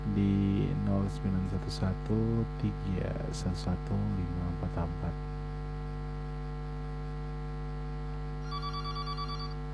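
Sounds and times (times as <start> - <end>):
loud steady electrical hum: 0.0 - 9.7
speech: 0.2 - 5.3
incoming call-in line pulsing electronic ring tone: 8.4 - 9.7.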